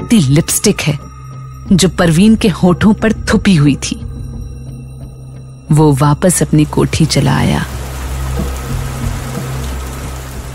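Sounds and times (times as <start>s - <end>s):
speech: 0.1s - 1.1s, 1.7s - 4.0s, 5.7s - 7.8s
steady rain: 6.3s - 10.5s.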